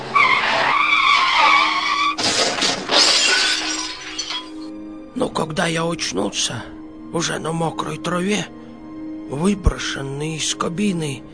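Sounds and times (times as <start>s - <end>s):
car tires squealing in a skid: 0.0s - 3.8s
car crashing into a ravine with breaking metal and glass: 0.3s - 4.7s
debris clattering and tumbling: 2.2s - 4.7s
speech: 5.4s - 8.6s, 9.3s - 11.3s.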